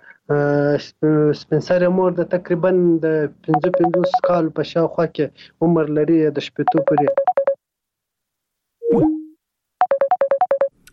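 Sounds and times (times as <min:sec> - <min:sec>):
speech: 0:00.3 - 0:07.2
electronic telephone tones after a dropped line: 0:03.6 - 0:04.3, 0:06.7 - 0:07.6, 0:09.8 - 0:10.7.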